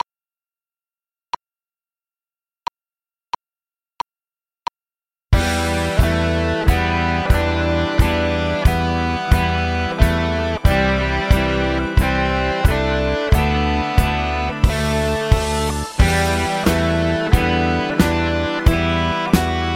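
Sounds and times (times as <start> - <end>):
drums: 5.4 - 19.7.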